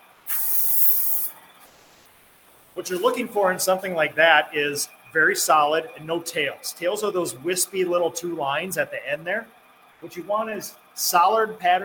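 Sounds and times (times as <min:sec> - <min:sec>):
oil primer paint sprayer spraying a test pattern onto a spray pattern sheet: 0:00.0 - 0:02.0
speech: 0:02.8 - 0:11.8.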